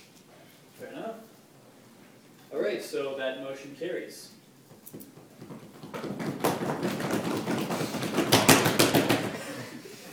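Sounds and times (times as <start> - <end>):
speech: 2.5 - 5.1
room full of people knocking knuckles on tables: 4.7 - 9.5.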